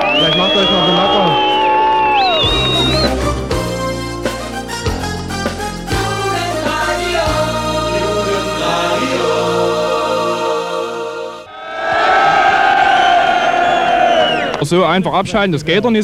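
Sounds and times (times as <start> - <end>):
large protest crowd cheering and shouting: 0.0 - 3.3, 11.4 - 14.6
music: 1.3 - 11.5
speech: 14.7 - 16.0.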